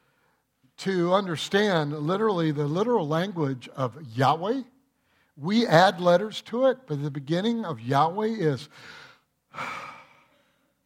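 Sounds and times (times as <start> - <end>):
speech: 0.8 - 4.7, 5.4 - 9.8
person breathing in: 8.7 - 10.8.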